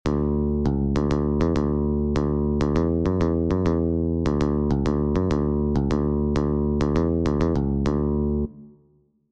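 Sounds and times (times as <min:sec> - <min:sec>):
bass guitar: 0:00.0 - 0:08.9.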